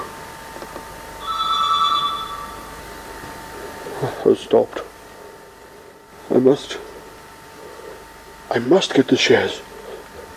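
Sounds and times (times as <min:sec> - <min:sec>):
quiet hum: 0:00.0 - 0:10.3
telephone bell ringing: 0:01.2 - 0:02.9
speech: 0:04.3 - 0:04.9, 0:06.4 - 0:06.9, 0:08.5 - 0:09.7.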